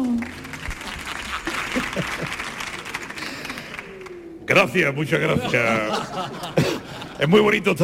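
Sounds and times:
studio audience applause: 0.0s - 4.7s
laughter: 0.6s - 3.9s, 5.1s - 7.8s
speech: 4.5s - 6.6s, 7.2s - 7.8s.

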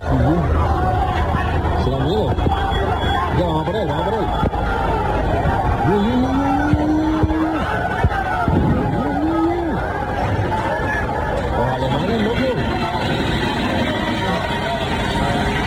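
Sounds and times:
faint traffic in central Seville: 0.0s - 15.6s
outdoor crowd of football fans roaring and yelling in a street brawl: 0.0s - 15.6s
drawn-out shouts of football fans: 0.1s - 15.6s.

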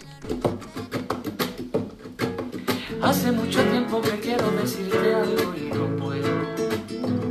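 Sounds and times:
teenage boy singing a pop song cover in Spanish: 0.0s - 1.3s, 2.7s - 7.2s
speech: 0.2s - 0.6s, 3.0s - 7.0s.

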